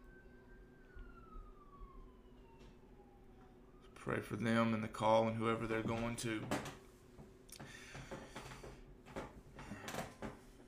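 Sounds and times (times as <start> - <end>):
ambulance or fire truck siren wailing with falling tone: 0.0 - 6.4
speech: 4.0 - 6.8.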